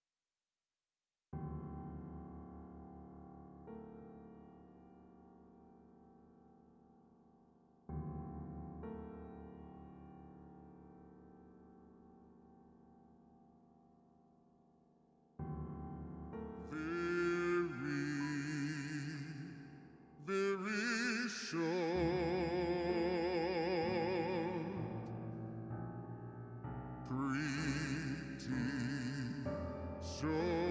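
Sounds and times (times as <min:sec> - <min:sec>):
piano: 0:01.4 - 0:30.6
tenor singing a ballad with reverb: 0:16.6 - 0:25.2, 0:27.1 - 0:30.6.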